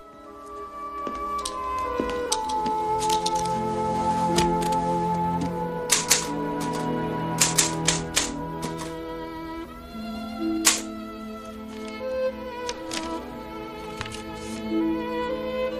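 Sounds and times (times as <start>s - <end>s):
sustained musical drone: 0.0s - 15.7s
typewriter keys clacking: 2.2s - 3.5s, 5.9s - 6.8s, 7.4s - 8.9s, 10.6s - 10.9s.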